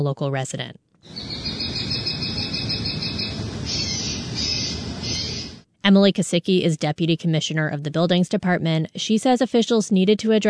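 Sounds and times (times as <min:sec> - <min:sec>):
speech: 0:00.0 - 0:01.3, 0:05.9 - 0:10.4
constant outdoor rumble: 0:01.1 - 0:05.6
loud bird calls from a deterrent device: 0:01.1 - 0:05.6.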